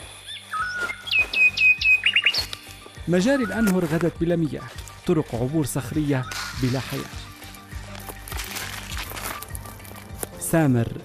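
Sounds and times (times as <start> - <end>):
birds singing in a drought-stricken area with dried springs: 0.0 - 7.8
speech: 3.1 - 7.2, 10.5 - 11.0.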